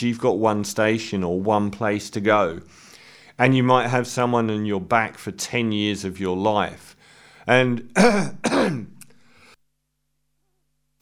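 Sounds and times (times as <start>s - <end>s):
speech: 0.0s - 2.8s, 3.4s - 8.9s
person clearing throat: 7.8s - 9.0s
person coughing: 7.9s - 9.0s.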